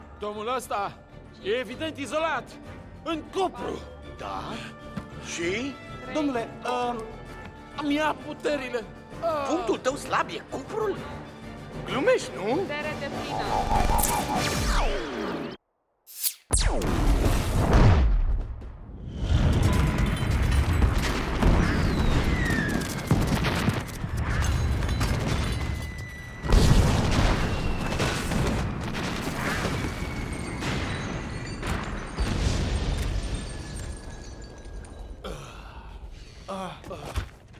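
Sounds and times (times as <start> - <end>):
speech: 0.2 - 7.2, 7.8 - 11.2, 11.8 - 15.4, 16.7 - 17.0
explosion in an animated film: 16.5 - 25.7, 26.4 - 35.2.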